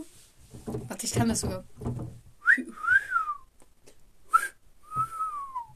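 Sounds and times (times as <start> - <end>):
speech: 1.2 - 2.2
person whistling with the mouth: 2.4 - 3.5, 4.3 - 5.7.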